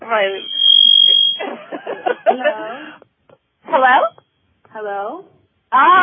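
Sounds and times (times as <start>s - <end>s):
speech: 0.1s - 0.6s, 4.8s - 6.0s
high-pitched electronic beep: 0.2s - 1.6s
laughter: 1.4s - 3.0s.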